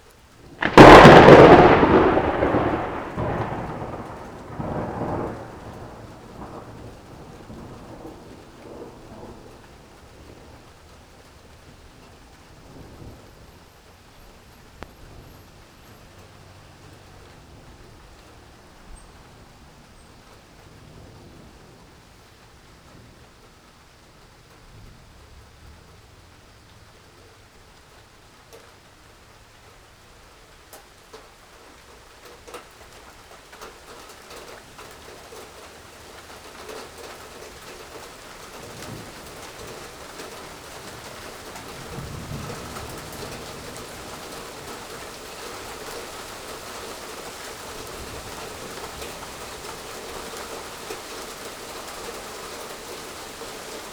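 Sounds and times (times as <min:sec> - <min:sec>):
rain: 0:00.0 - 0:53.9
thunder: 0:00.6 - 0:13.6, 0:34.3 - 0:53.9.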